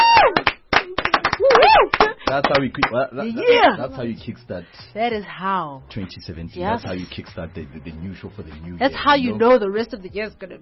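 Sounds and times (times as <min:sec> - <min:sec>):
sparse hand claps applauding a singer's performance: 0:00.1 - 0:03.0
speech: 0:02.4 - 0:10.5.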